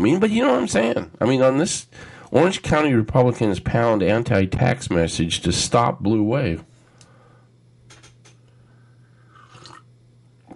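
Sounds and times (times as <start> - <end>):
speech: 0.0 - 6.7
wet slurping of hot coffee: 9.3 - 9.9.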